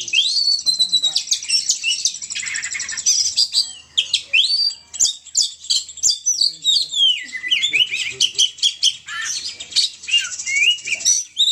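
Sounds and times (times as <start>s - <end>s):
Oriental magpie-robin song of sweet descending whistles and harsher chirps: 0.0s - 11.4s.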